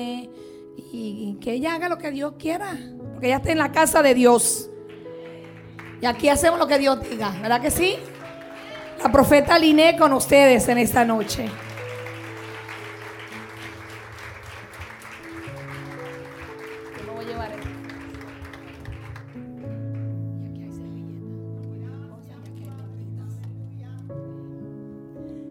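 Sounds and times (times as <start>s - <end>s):
speech: 0.0s - 4.7s, 6.0s - 8.1s, 9.0s - 11.7s
sustained keyboard chords: 0.0s - 25.4s
scattered half-hearted clapping from a church audience: 4.9s - 9.8s, 11.0s - 20.1s.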